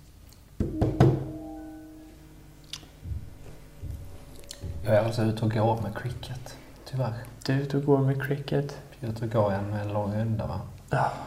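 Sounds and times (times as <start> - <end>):
faint lingering hum: 0.3 - 11.2
sharp knocks on a door: 0.6 - 1.3, 3.0 - 5.5
softer duller thuds: 2.9 - 6.5
speech: 4.9 - 11.2.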